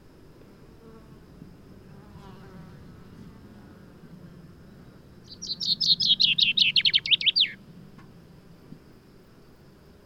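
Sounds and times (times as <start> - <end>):
common chaffinch song: 2.8 - 10.0.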